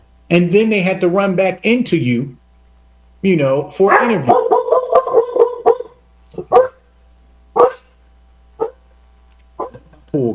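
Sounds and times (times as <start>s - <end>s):
speech: 0.3s - 2.4s, 3.2s - 4.5s, 10.1s - 10.3s
dog barking: 3.9s - 6.8s, 7.6s - 8.0s, 8.6s - 8.8s, 9.6s - 9.8s.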